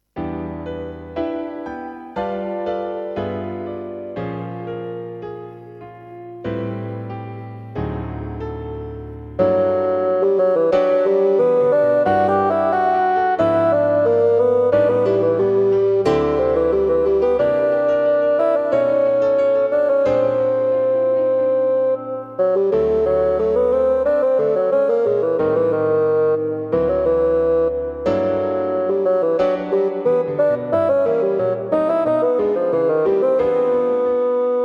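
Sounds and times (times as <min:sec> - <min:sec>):
piano playing harmonies: 0:00.0 - 0:34.6
bassoon playing running lines: 0:09.4 - 0:34.6.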